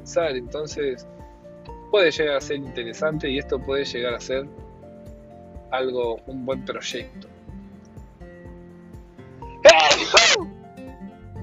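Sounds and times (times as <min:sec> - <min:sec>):
speech: 0:00.0 - 0:01.2, 0:01.9 - 0:04.6, 0:05.7 - 0:07.3
single loud sneeze: 0:09.6 - 0:10.4.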